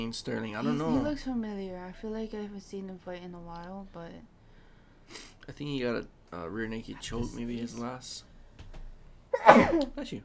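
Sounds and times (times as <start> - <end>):
speech: 0.0 - 4.3, 5.1 - 8.3, 9.3 - 10.2
loud sneeze: 9.4 - 9.9.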